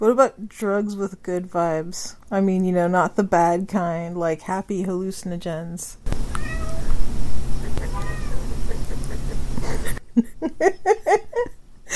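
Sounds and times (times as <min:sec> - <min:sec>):
speech: 0:00.0 - 0:06.4, 0:10.2 - 0:11.9
rumbling noise: 0:06.0 - 0:10.0
kitten meowing loudly: 0:06.2 - 0:08.6
laughter: 0:07.6 - 0:11.5.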